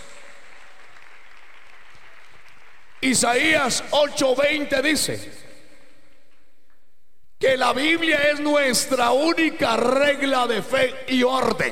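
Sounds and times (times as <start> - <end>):
crowd applauding in a religious service: 0.0 - 3.5
speech: 3.0 - 5.4, 7.5 - 11.7.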